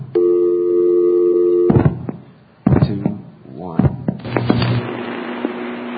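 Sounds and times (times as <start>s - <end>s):
steady multi-tone telephone signal: 0.2s - 1.8s
sharp clicks and thumps: 1.7s - 3.2s, 3.8s - 5.6s.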